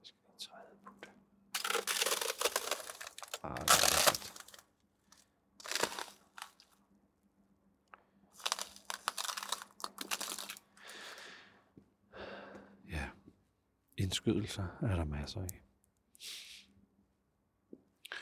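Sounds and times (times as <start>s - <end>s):
ice cubes rattling and crunching: 1.6s - 4.6s, 5.6s - 6.7s, 8.4s - 11.1s
speech: 14.1s - 15.6s.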